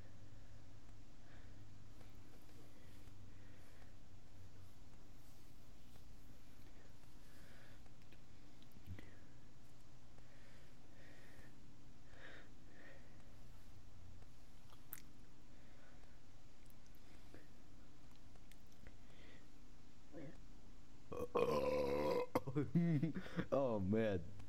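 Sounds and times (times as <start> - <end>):
loud drawn-out throaty burp: 21.1 - 22.5
speech: 22.6 - 24.4.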